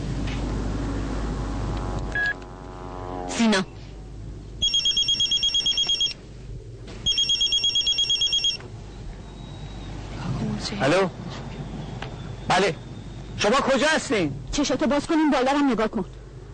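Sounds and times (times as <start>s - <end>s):
low rumbling noises: 0.0s - 4.7s, 6.1s - 7.1s, 8.6s - 15.0s
speech: 3.4s - 3.7s, 10.8s - 11.2s, 12.6s - 12.8s, 13.4s - 16.2s
mobile phone ringing inside a jacket with high trilling electronic beeps: 4.6s - 6.2s, 7.1s - 8.6s.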